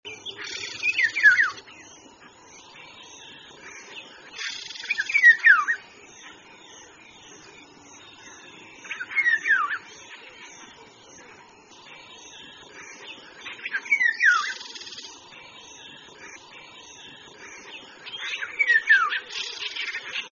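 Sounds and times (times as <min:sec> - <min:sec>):
masked oriole singing: 0:00.0 - 0:20.3.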